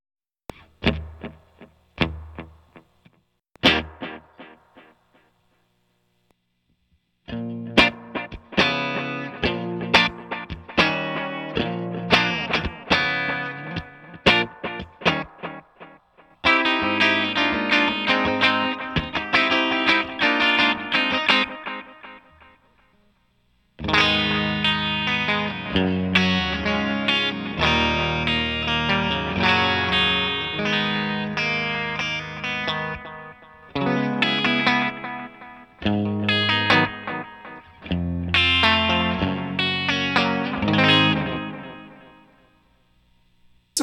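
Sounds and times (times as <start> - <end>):
electric guitar through a reverb pedal: 0.5 - 5.3, 7.3 - 23.1, 23.8 - 42.6.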